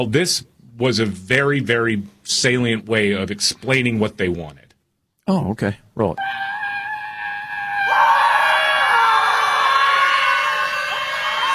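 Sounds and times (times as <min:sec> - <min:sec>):
speech: 0:00.0 - 0:04.6, 0:05.3 - 0:06.5
crowd of protesters screaming in unison: 0:06.2 - 0:11.5.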